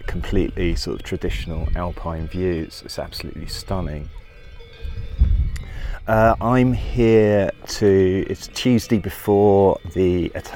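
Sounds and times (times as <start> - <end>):
low outdoor rumble of wind: 0.0 - 8.4
cowbells clanking on grazing alpine cows: 0.0 - 10.5
speech: 0.2 - 4.2, 6.1 - 10.5.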